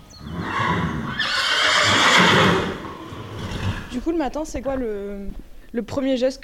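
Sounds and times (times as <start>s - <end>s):
horse neighing in a stable: 0.2s - 4.0s
faint rustling: 3.1s - 6.4s
speech: 4.0s - 6.4s.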